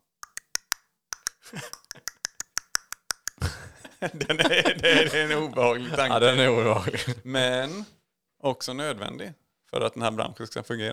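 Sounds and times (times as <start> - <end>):
voice imitating a stork's beak-clattering call: 0.2 - 3.4
speech: 1.5 - 2.1, 4.0 - 10.9
laughter: 3.4 - 7.3.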